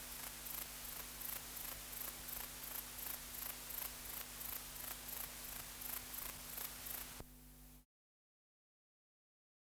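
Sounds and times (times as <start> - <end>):
grey bush-cricket Platycleis albopunctata chirping: 0.0 - 7.2.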